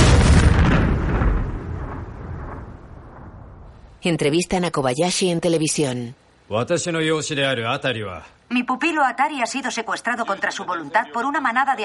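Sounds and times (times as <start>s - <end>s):
burning drone exploding in a deep loud blast: 0.0s - 3.9s
speech: 4.0s - 11.8s.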